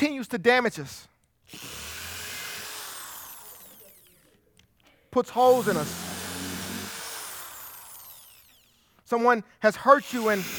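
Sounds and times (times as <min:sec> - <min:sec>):
speech: 0:00.0 - 0:01.8, 0:05.2 - 0:06.1, 0:09.1 - 0:10.5
power drill whirring and spinning down: 0:01.4 - 0:04.4, 0:05.3 - 0:09.0, 0:10.0 - 0:10.5.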